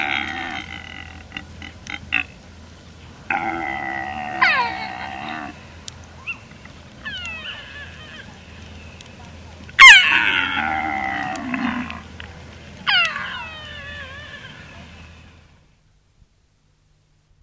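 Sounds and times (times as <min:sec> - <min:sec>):
Père David's deer bellowing: 0:00.0 - 0:02.4, 0:03.3 - 0:08.6, 0:09.8 - 0:12.1, 0:12.8 - 0:15.3
Père David's deer squealing: 0:03.3 - 0:05.6, 0:06.2 - 0:08.4, 0:09.8 - 0:12.0, 0:12.8 - 0:15.2.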